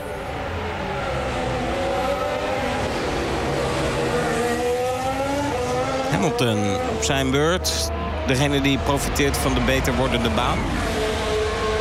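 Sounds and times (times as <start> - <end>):
2026 Formula One car engine howl during wheelspin at the Azerbaijan Grand Prix: 0.3 - 11.7
speech: 6.2 - 11.0.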